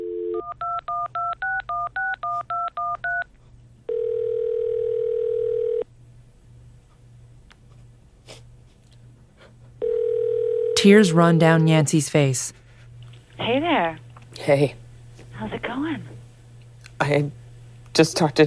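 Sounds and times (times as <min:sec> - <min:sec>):
long steady phone tone: 0:00.0 - 0:03.3, 0:03.9 - 0:05.8, 0:09.8 - 0:10.9
low electrical hum: 0:00.0 - 0:18.4
touch-tone phone keypad beeps: 0:00.4 - 0:03.2
speech: 0:10.8 - 0:12.6, 0:13.8 - 0:14.8, 0:15.5 - 0:16.1, 0:17.1 - 0:17.4, 0:18.0 - 0:18.4.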